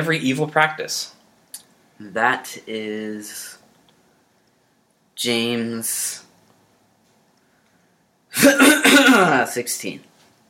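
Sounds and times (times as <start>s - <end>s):
speech: 0.0s - 1.2s, 2.0s - 3.6s, 5.2s - 6.2s, 8.4s - 10.1s
person coughing: 8.3s - 9.5s
throat clearing: 8.4s - 9.4s.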